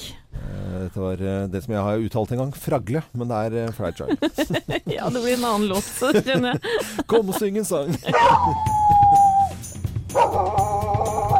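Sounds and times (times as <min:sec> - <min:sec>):
speech: 0:01.0 - 0:08.9
laughter: 0:04.0 - 0:08.8
dogs howling: 0:08.1 - 0:11.3.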